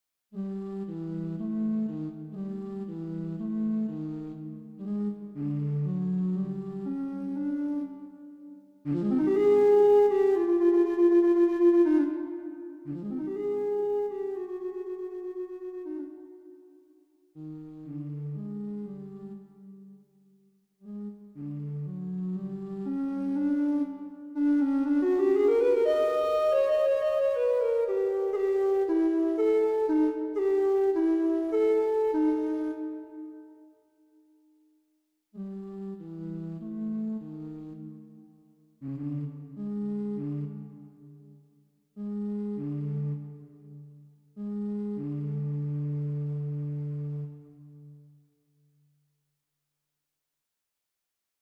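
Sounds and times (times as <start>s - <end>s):
bass flute: 0.4s - 16.8s, 17.4s - 19.6s, 20.9s - 33.7s, 38.8s - 41.0s, 42.0s - 48.0s.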